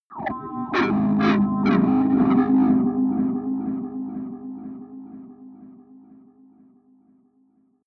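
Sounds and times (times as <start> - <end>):
atmospheric feedback distortion drones: 0.1 - 5.2.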